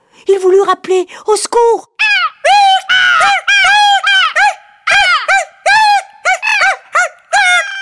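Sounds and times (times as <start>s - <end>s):
speech: 0.2s - 2.6s
monkeys screeching with shrill rising-and-falling calls: 2.0s - 7.8s.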